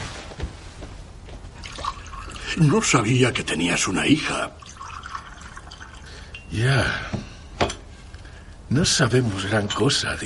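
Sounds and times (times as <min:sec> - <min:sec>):
faint hiss: 0:00.0 - 0:10.2
small drips and splashes of coffee: 0:01.6 - 0:02.6, 0:04.4 - 0:06.5
coffee being poured: 0:01.6 - 0:06.5
speech: 0:02.5 - 0:04.6, 0:06.5 - 0:07.2, 0:08.7 - 0:10.2.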